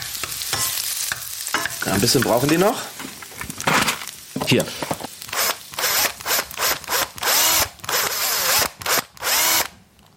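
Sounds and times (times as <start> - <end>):
speech: 1.8 - 3.0, 4.5 - 5.0
cordless drill boring into material: 5.3 - 9.7.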